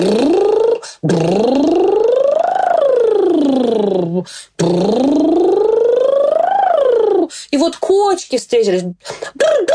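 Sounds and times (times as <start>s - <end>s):
voice imitating a toy car engine going over a hill: 0.0s - 7.3s
speech: 8.3s - 9.7s.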